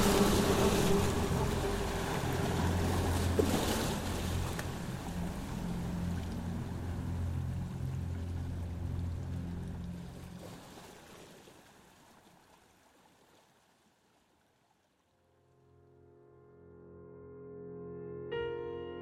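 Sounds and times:
rising water with waves sloshing and churning: 0:00.0 - 0:15.1.

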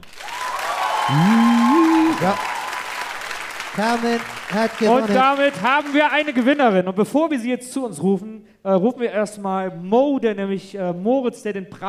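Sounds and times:
crowd whooping and cheering: 0:00.0 - 0:05.7
live crowd applauding for a contestant: 0:00.0 - 0:06.8
speech: 0:01.1 - 0:01.6, 0:02.2 - 0:02.5, 0:03.8 - 0:11.8.

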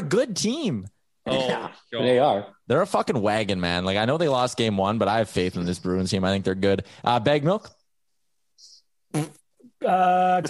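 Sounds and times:
speech: 0:00.1 - 0:07.8, 0:08.6 - 0:10.4
buzzy voiced fart noises: 0:09.1 - 0:09.7.

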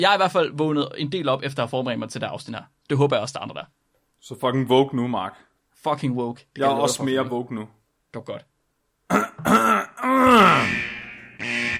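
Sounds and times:
speech: 0:00.0 - 0:08.5, 0:09.1 - 0:10.8
person clearing throat: 0:09.1 - 0:10.8.

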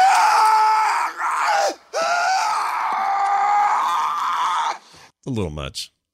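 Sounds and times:
man screaming in a film clip: 0:00.0 - 0:04.8
speech: 0:05.3 - 0:06.0.

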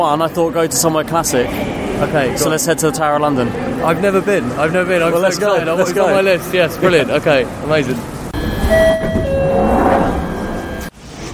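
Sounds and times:
speech: 0:00.0 - 0:08.1, 0:08.7 - 0:09.7
moving train rumbling heard from inside the carriage: 0:00.0 - 0:10.9
thin electric whine of a moving train: 0:08.2 - 0:10.9.

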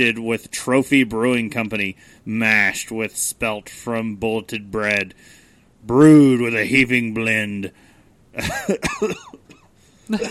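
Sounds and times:
speech: 0:00.0 - 0:07.8, 0:08.4 - 0:09.4, 0:10.1 - 0:10.2
person coughing: 0:08.4 - 0:10.2.

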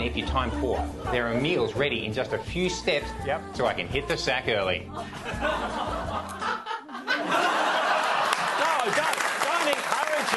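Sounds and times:
speech: 0:00.0 - 0:06.3
chuckles and laughter: 0:04.9 - 0:10.3
people clapping their hands: 0:07.3 - 0:10.3.

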